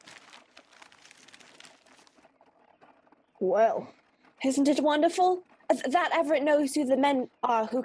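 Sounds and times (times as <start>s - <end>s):
newspaper pages rustling and crinkling: 0.0s - 2.3s
speech: 3.4s - 7.8s.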